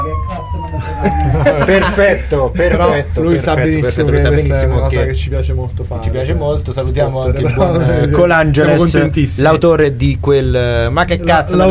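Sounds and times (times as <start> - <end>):
siren wailing in one long tone gliding downward: 0.0 - 1.7
laughter: 0.7 - 3.8, 7.3 - 8.4
speech: 1.0 - 11.6.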